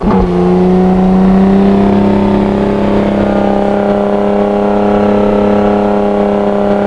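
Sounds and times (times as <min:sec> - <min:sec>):
V8 engine running: 0:00.0 - 0:06.8.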